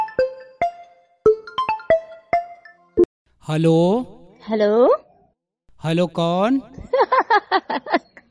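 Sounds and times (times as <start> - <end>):
phone melodic ringtone for an incoming call: 0.0 - 3.1
speech: 3.5 - 5.0, 5.8 - 6.8, 7.4 - 8.0
laughter: 6.8 - 8.3.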